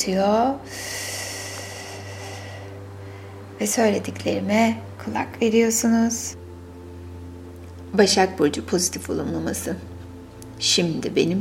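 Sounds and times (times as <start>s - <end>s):
speech: 0.0s - 0.9s, 3.6s - 6.4s, 7.9s - 9.9s, 10.6s - 11.3s
low constant hum: 0.0s - 11.3s
long deep breath drawn in while sitting: 0.7s - 3.6s.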